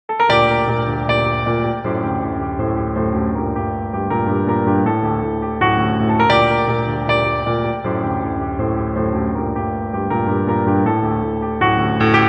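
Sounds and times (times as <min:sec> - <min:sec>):
Russian classical piano music: 0:00.1 - 0:12.2.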